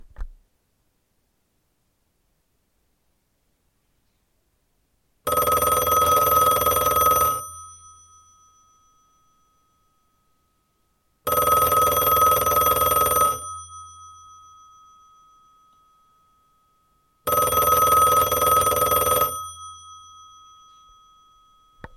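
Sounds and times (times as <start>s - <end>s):
old telephone ringing: 5.3s - 10.2s, 11.3s - 21.9s.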